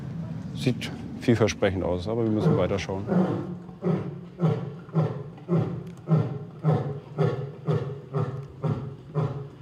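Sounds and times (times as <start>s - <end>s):
speech: 0.6s - 4.1s
male lion roaring to mark territory: 2.3s - 9.5s.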